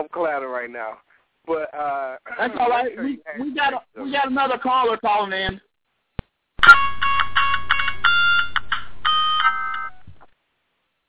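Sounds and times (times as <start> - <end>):
speech: 0.0 - 5.7
electronic telephone ringtone for an incoming call: 6.6 - 10.0.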